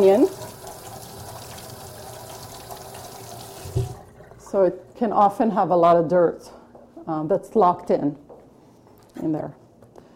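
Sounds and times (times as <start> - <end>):
speech: 0.0 - 0.4, 4.5 - 8.2, 9.2 - 9.6
water running from a tap over cut leek: 0.0 - 5.0.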